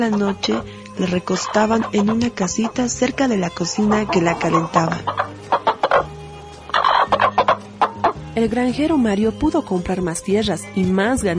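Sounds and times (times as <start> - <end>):
speech: 0.0 - 5.2, 8.4 - 11.3
hen clucking: 0.0 - 8.2.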